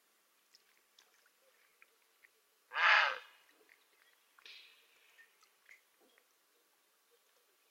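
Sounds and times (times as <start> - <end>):
grey heron squawking: 2.7 - 3.3.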